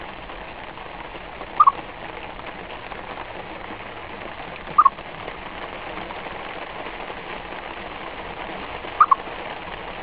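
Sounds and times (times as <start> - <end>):
continuous rain-like background noise: 0.0 - 10.0
squirrel giving brisk clipped chirps: 1.6 - 1.8, 4.8 - 5.0, 9.0 - 9.2.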